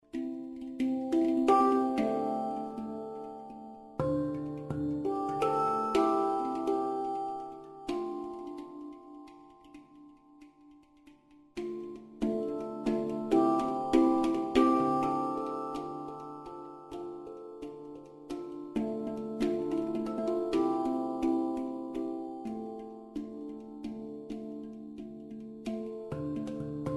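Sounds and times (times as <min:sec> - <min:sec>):
handpan: 0:00.0 - 0:26.9.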